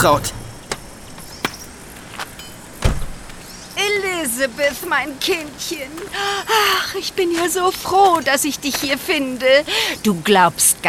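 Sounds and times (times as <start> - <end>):
speech: 0.0 - 0.4, 4.3 - 10.8
car engine rumble at a scrapyard: 0.0 - 7.2
heavy door-like thud: 0.4 - 3.6.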